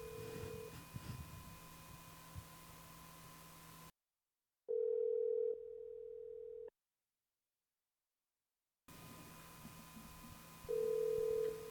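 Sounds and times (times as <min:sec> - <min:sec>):
ringback tone of an outgoing prank phone call: 0:00.0 - 0:00.8, 0:04.7 - 0:06.7, 0:10.7 - 0:11.7.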